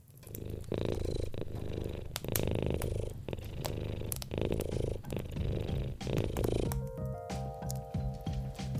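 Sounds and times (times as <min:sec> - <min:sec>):
cat purring: 0:00.0 - 0:07.0
soft sustained musical tone: 0:06.6 - 0:08.7.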